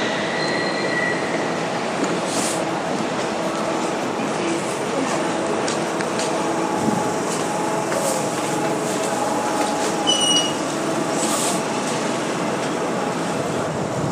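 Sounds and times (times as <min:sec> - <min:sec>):
Docklands Light Railway train rumbling at a station platform: 0:00.0 - 0:14.1
train wheels squealing: 0:10.0 - 0:10.6.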